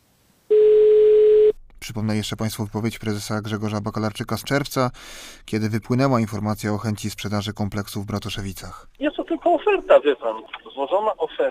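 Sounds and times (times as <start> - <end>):
loud steady telephone call tone of an unanswered call: 0.5 - 1.6
speech: 2.0 - 11.4.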